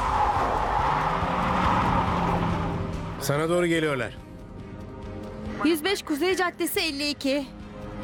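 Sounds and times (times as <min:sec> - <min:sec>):
car engine droning during a chase on icy roads: 0:00.1 - 0:03.2
speech: 0:03.3 - 0:04.3, 0:05.6 - 0:07.6.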